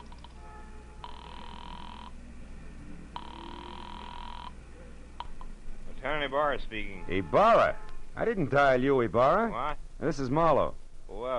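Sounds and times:
telephone ringing over the line from a filling station phone: 0.0s - 2.2s, 3.2s - 4.6s
low steady hum: 0.0s - 11.3s
speech: 6.0s - 11.3s.

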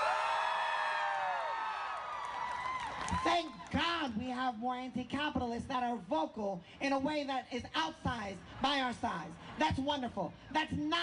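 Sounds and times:
audience screaming and whooping: 0.0s - 3.3s
speech: 3.1s - 11.0s.

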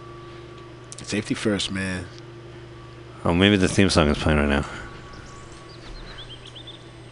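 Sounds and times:
steady low hum: 0.0s - 7.1s
speech: 1.0s - 2.2s, 3.2s - 4.9s
canaries chirping: 3.7s - 7.1s.

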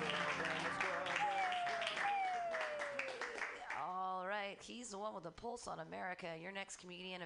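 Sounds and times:
crowd cheering: 0.0s - 3.8s
live audience clapping: 0.0s - 3.9s
speech: 4.6s - 7.2s.

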